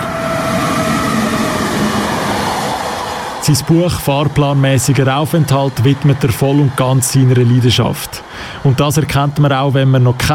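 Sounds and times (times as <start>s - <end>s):
train rumbling along rails: 0.0s - 10.3s
speech: 3.4s - 10.3s.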